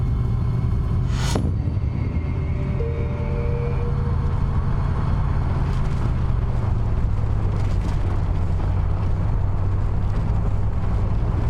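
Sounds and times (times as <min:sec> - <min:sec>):
car engine rumble while driven fast toward a shipyard on a hot day: 0:00.0 - 0:11.4
car road noise: 0:00.0 - 0:11.4
sharp whoosh: 0:00.8 - 0:05.0.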